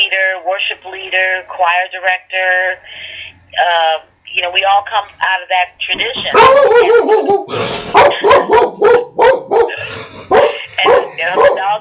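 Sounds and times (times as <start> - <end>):
speech: 0.4 - 9.0
dog barking: 6.3 - 11.8.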